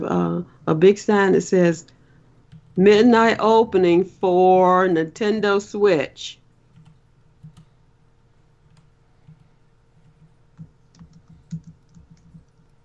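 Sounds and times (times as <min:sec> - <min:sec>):
speech: 0:00.0 - 0:02.0, 0:02.8 - 0:06.4
low steady hum: 0:00.0 - 0:12.8
soft irregular typing on a computer keyboard: 0:02.5 - 0:02.8, 0:06.7 - 0:07.8, 0:08.6 - 0:12.8.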